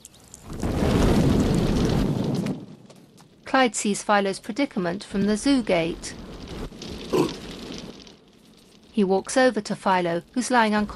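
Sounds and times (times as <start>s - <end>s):
low rumbling roar of flames from leaking truck petrol ignited by a cigar butt: 0.4s - 2.8s, 5.9s - 9.0s
speech: 3.6s - 6.2s, 9.0s - 10.9s.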